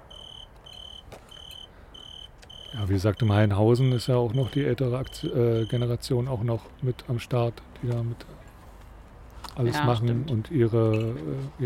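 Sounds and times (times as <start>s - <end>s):
cricket chirping: 0.0s - 3.4s, 4.0s - 5.9s
speech: 2.7s - 8.4s, 9.6s - 11.6s.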